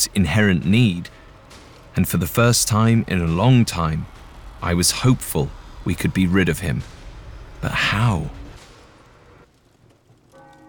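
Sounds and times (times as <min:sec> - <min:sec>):
speech: 0:00.0 - 0:01.2, 0:02.0 - 0:07.0, 0:07.6 - 0:08.4
hissing rumbling noise: 0:00.0 - 0:10.4
church bell ringing: 0:10.3 - 0:10.6.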